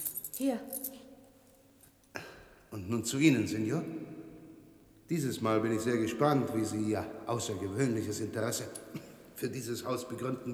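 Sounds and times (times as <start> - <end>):
set of keys jingling: 0.0 - 2.1, 8.7 - 9.0
speech: 0.4 - 0.9, 2.7 - 4.2, 5.1 - 10.5.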